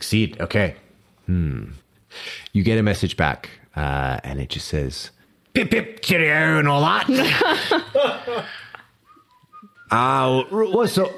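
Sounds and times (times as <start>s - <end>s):
speech: 0.1s - 8.6s, 9.9s - 11.1s
person whistling a tin whistle-style tune: 9.0s - 10.4s.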